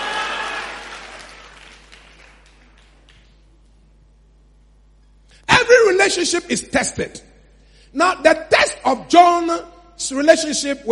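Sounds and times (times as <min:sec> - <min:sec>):
audience clapping hands: 0:00.0 - 0:03.6
speech: 0:06.1 - 0:07.3, 0:07.9 - 0:10.9.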